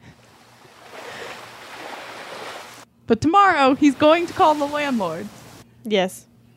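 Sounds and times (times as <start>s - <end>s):
quiet stream of flowing water: 0.0s - 2.9s, 3.6s - 5.6s
speech: 3.1s - 6.5s.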